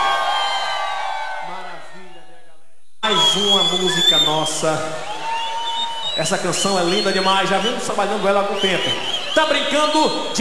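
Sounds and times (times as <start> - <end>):
high whoops from the crowd: 0.0 - 2.0, 5.0 - 6.2
large crowd shouting and cheering at a live music performance: 0.0 - 2.4, 3.0 - 10.3
speech: 3.4 - 5.1, 6.2 - 10.3.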